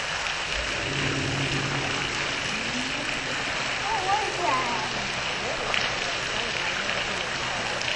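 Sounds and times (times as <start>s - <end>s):
ash cave noise: 0.1s - 7.8s.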